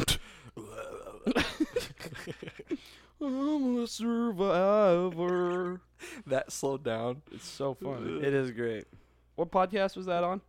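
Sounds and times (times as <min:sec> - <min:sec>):
loud drawn-out burp: 0:00.0 - 0:01.4
speech: 0:03.2 - 0:10.4.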